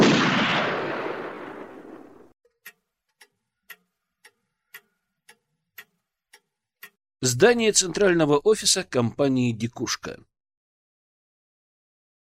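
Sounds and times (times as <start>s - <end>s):
pistol shot fired from under a bedsheet: 0.0s - 2.2s
faint clock-like ticks: 2.4s - 7.0s
speech: 7.2s - 10.3s.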